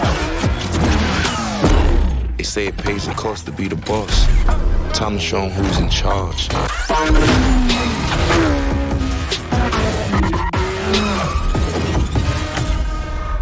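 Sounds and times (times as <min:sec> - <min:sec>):
whining car engine in an arcade racing video game: 0:00.0 - 0:02.4, 0:06.5 - 0:13.4
dense continuous arcade racing video game audio: 0:00.0 - 0:13.4
speech: 0:02.5 - 0:08.5.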